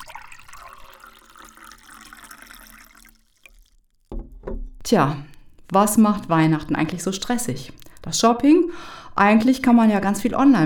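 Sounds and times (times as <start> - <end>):
hot tea pouring into a cup: 0.0 - 4.3, 7.6 - 8.1
speech: 4.9 - 10.6.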